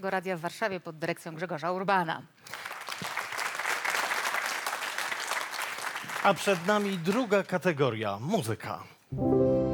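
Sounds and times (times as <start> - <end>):
speech: 0.0 - 2.8, 6.2 - 9.6
large audience applauding: 2.5 - 7.9.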